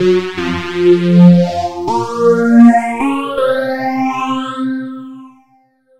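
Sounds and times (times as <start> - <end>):
phased out synth pad: 0.0 - 4.1.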